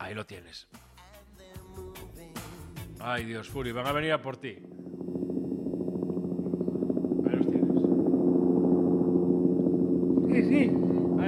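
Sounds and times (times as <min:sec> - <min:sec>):
speech: 0:00.1 - 0:00.9, 0:03.0 - 0:04.8
helicopter rotor chopping overhead: 0:02.8 - 0:11.2.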